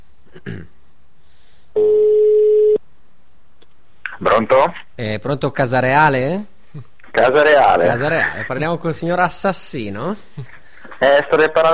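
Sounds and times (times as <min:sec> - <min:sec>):
buzzing phone ringback tone on an outgoing call: 0:01.8 - 0:02.8
speech: 0:04.4 - 0:11.7.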